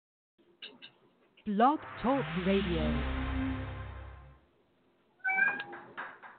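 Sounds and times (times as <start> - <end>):
speech: 1.5 - 3.2
cat meowing: 5.2 - 5.7.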